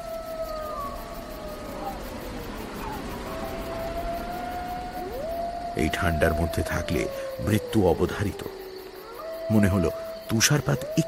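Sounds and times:
pack of wolves howling mournfully on a dark snowy evening: 0:00.0 - 0:11.0
speech: 0:05.8 - 0:08.6, 0:09.5 - 0:11.0.

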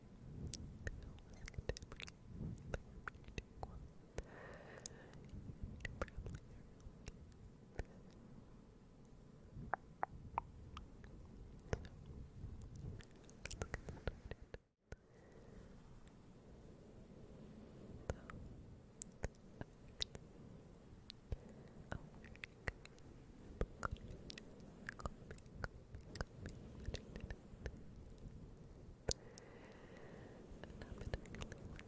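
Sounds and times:
low soft murmur: 0:00.0 - 0:31.8
wet mouth clicks and smacks: 0:00.4 - 0:08.2, 0:09.6 - 0:15.0, 0:19.0 - 0:20.2, 0:21.0 - 0:28.3, 0:29.1 - 0:31.8
close unintelligible whispering: 0:00.5 - 0:08.2, 0:12.7 - 0:15.1, 0:18.0 - 0:20.2, 0:21.2 - 0:28.2, 0:29.1 - 0:31.8.

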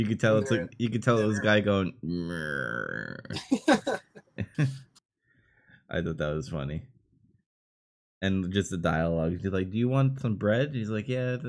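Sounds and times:
speech: 0:00.0 - 0:04.9, 0:05.9 - 0:06.9, 0:08.2 - 0:11.4
man's voice imitating a growling stomach: 0:02.1 - 0:03.4
laughter: 0:03.3 - 0:04.9.

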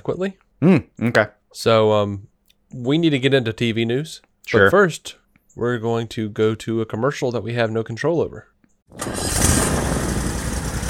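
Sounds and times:
speech: 0:00.0 - 0:09.2
Toro Z-Master 4000 zero-turn mower engine starting up: 0:08.9 - 0:10.8.

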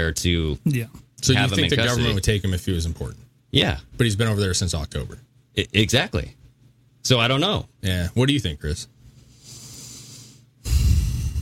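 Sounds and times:
speech: 0:00.0 - 0:06.4, 0:07.0 - 0:08.9
heavy breathing: 0:09.2 - 0:11.4.

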